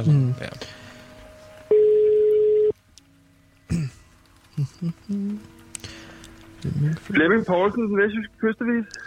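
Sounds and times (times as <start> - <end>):
speech: 0.0 - 0.8, 4.6 - 5.6, 6.6 - 9.0
telephone steady electronic dial tone: 1.7 - 2.7
beeps and tones of a phone line connecting: 1.7 - 2.8.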